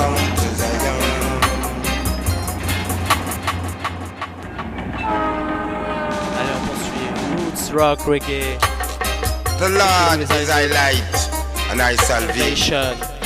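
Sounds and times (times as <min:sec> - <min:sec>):
train engine drone: 0:00.0 - 0:13.2
train wheels clacking over rail joints: 0:01.0 - 0:07.8
train horn: 0:04.6 - 0:07.8
speech: 0:07.8 - 0:08.8, 0:09.6 - 0:13.1.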